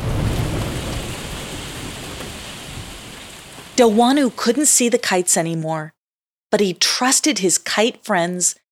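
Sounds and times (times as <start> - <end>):
deep rumble of thunder: 0.0 - 4.5
hail or heavy rain pelting down: 0.0 - 4.5
speech: 3.8 - 8.6.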